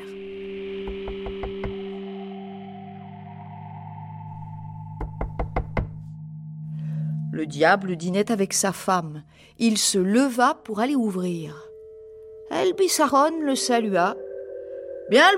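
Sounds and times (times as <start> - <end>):
sharp knocking on a door: 5.0 - 6.0
speech: 7.4 - 11.6, 12.6 - 14.2, 15.1 - 15.3.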